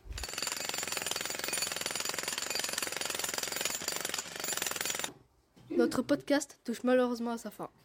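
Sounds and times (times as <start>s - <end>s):
jackhammer pounding: 0.1s - 5.2s
speech: 5.8s - 7.8s.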